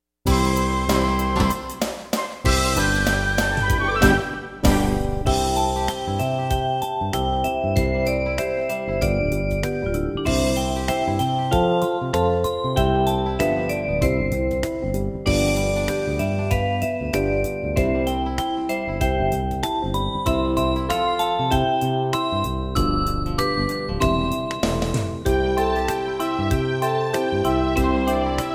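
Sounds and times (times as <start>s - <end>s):
instrumental music: 0.3s - 28.5s.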